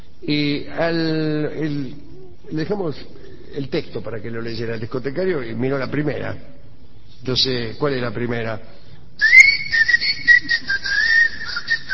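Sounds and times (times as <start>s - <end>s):
speech: 0.2s - 6.6s, 7.2s - 9.8s
person whistling a tango melody: 9.2s - 11.9s.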